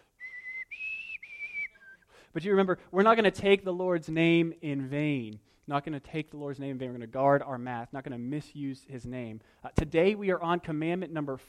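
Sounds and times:
person whistling a short four-note tune: 0.0s - 2.3s
speech: 2.3s - 11.4s.

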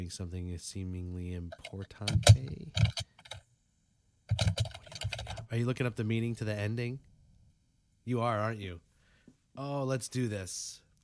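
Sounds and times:
speech: 0.0s - 3.1s, 5.5s - 7.1s, 8.0s - 8.9s, 9.6s - 10.8s
woman's fingers typing hard on a computer keyboard: 1.6s - 3.4s, 4.3s - 5.4s.

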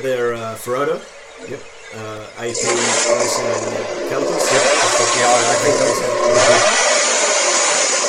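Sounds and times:
speech: 0.0s - 6.9s
racing car engine revving during a race weekend: 2.5s - 8.0s.

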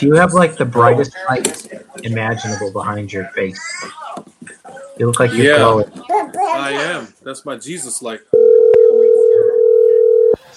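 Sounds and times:
speech: 0.0s - 4.0s, 5.0s - 8.5s
loud steady telephone dial tone: 8.4s - 10.4s.

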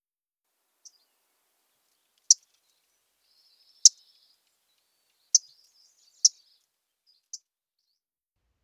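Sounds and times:
MacGillivray's warbler loud sharp tink calls: 0.8s - 7.4s
faint soft twittering: 0.8s - 7.4s.

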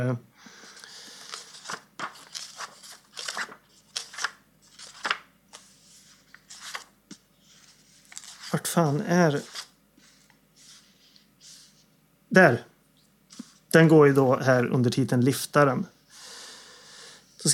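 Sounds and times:
speech: 0.0s - 0.3s, 8.7s - 9.6s, 12.4s - 12.7s, 13.7s - 16.0s
pages of a book being flipped: 0.8s - 11.9s, 13.3s - 13.6s.

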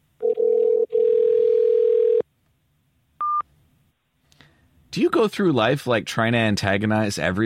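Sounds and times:
telephone ringing with electronic buzzing tone: 0.2s - 2.2s
speech: 5.0s - 7.4s.

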